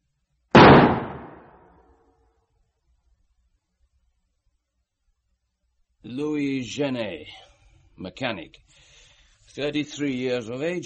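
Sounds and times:
revolver gunshot: 0.6s - 1.7s
speech: 6.0s - 7.4s, 8.0s - 8.8s, 9.5s - 10.8s.

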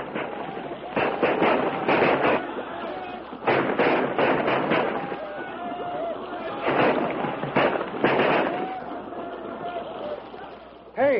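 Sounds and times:
rifle gunfire from men firing at attackers: 0.0s - 5.6s, 6.5s - 9.8s.

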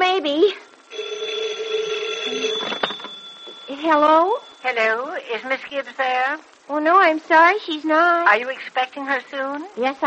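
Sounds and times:
telephone ringing with a bright buzzing tone: 0.5s - 5.1s
speech: 3.9s - 10.0s.

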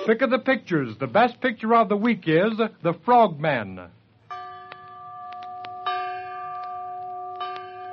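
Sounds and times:
speech: 0.0s - 4.0s
bell chimes rating a film: 4.3s - 7.9s.

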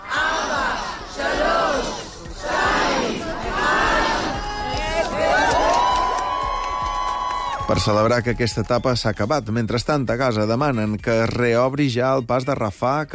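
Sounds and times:
large crowd shouting a countdown together: 0.0s - 7.6s
large crowd cheering: 0.0s - 9.2s
crowd whistling: 7.5s - 10.1s
speech: 7.7s - 13.1s.

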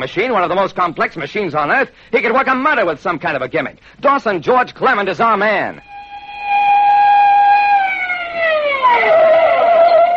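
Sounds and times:
speech: 0.0s - 6.4s
police car siren wailing: 5.8s - 10.1s.

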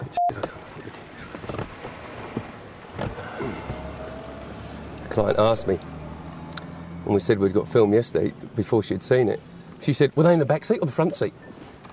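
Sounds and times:
car engine rumble approaching around a corner: 0.0s - 10.6s
car tire noise: 0.0s - 11.9s
speech: 5.2s - 5.9s, 7.1s - 11.6s.

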